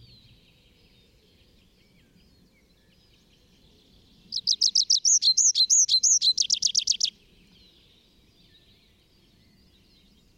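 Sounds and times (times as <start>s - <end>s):
Tree pipit singing in the Bavarian Forest, Germany: 4.3s - 7.2s.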